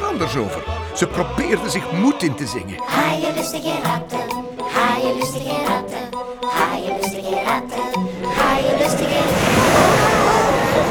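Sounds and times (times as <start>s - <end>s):
speech: 0.2s - 10.1s
heavy storm waves crashing over a ship's deck: 8.3s - 10.8s.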